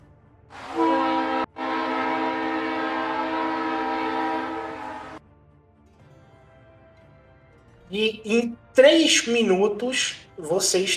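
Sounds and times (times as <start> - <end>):
loud train horn blasts: 0.6 - 5.2
speech: 7.9 - 10.9.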